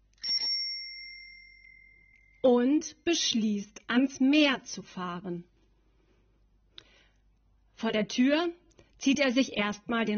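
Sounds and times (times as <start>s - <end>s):
old dusty bicycle bell ringing: 0.2s - 2.4s
speech: 2.4s - 5.5s, 7.8s - 10.1s.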